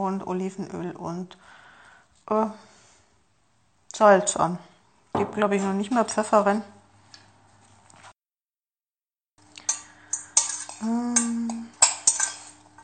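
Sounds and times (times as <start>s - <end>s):
speech: 0.0s - 1.6s, 2.3s - 2.7s, 3.9s - 6.8s
stainless steel pots and utensils clattering during cooking: 9.6s - 12.8s.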